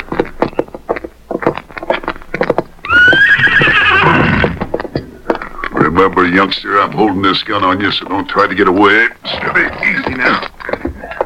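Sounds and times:
horse hooves clip-clopping: 0.0 - 11.2
horse whinnying: 2.8 - 4.8
speech: 6.0 - 10.5.

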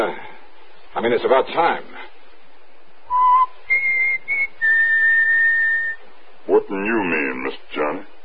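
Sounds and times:
speech: 1.0 - 1.9, 6.5 - 8.2
person whistling a short tune of clear notes: 3.1 - 6.0.

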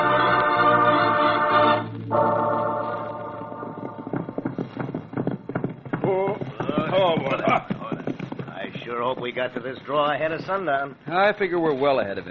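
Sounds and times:
sustained tonal passage: 0.0 - 4.3
horses' hooves clip-clopping as riders set off together: 2.8 - 12.0
speech: 9.1 - 12.3.

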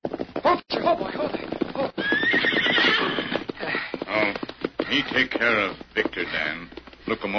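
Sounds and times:
ridden horse hooves clip-clopping: 0.0 - 7.3
speech: 0.5 - 1.5, 5.0 - 7.3
horse being ridden into a camp neighing: 0.9 - 5.1.

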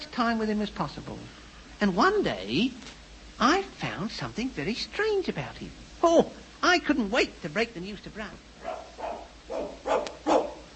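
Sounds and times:
speech: 0.2 - 8.5
dog barking in short bursts: 8.6 - 10.7.

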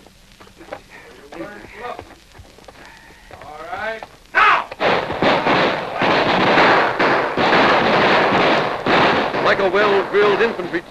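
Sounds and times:
dense wash of rough noise: 0.0 - 10.8
gunfire exchanged between outlaws and an advancing posse: 4.5 - 10.8
speech: 9.6 - 10.8.

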